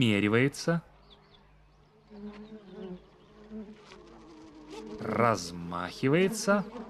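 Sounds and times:
speech: 0.0 - 0.9, 4.9 - 6.8
bee buzzing: 1.9 - 6.8.

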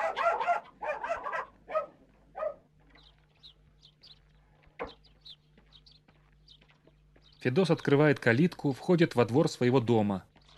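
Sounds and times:
dog barking in a village yard: 0.0 - 2.7
speech: 7.4 - 10.3.

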